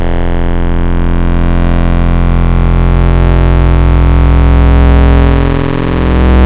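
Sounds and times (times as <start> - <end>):
digital warm tubes synth tone: 0.0 - 6.4.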